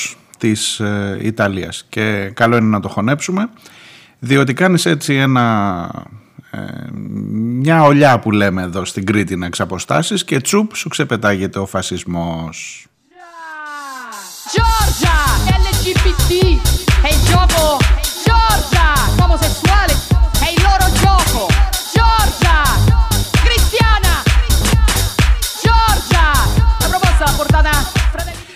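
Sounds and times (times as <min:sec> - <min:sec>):
speech: 0:00.4 - 0:13.0
dance club remix with four-on-the-floor kick and dense bass: 0:13.2 - 0:28.5.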